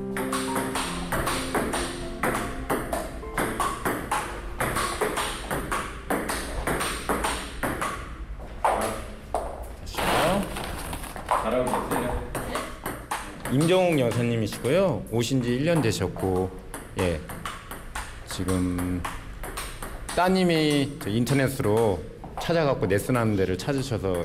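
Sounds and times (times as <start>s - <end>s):
table tennis balls clattering in a busy ping-pong hall in Mapo-gu Seoul: 0.2s - 9.6s, 10.6s - 22.5s
speech: 13.6s - 17.4s, 18.4s - 19.2s, 20.2s - 24.2s.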